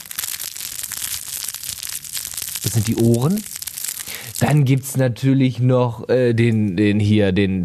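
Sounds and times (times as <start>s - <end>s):
crinkly fabric toy elephant being squeezed and scrunched: 0.0s - 5.0s
speech: 2.7s - 3.5s, 4.2s - 7.6s.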